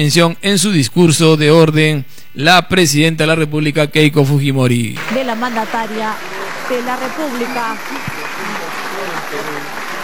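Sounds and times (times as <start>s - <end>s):
speech: 0.0s - 8.1s
audience applause at a presidential address: 5.0s - 10.0s.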